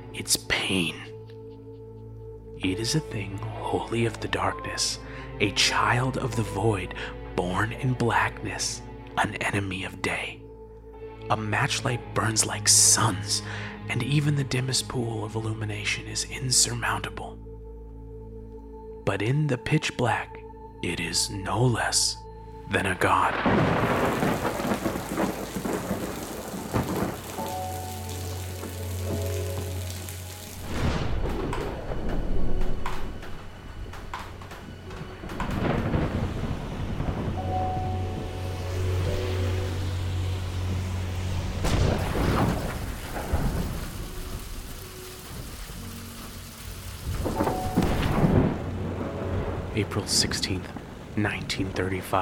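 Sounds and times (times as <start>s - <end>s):
speech: 0.1s - 1.1s, 2.6s - 10.4s, 11.3s - 17.5s, 19.1s - 24.4s
heavy rain: 23.1s - 52.2s
deep rolling thunder: 23.3s - 29.9s, 30.5s - 51.8s.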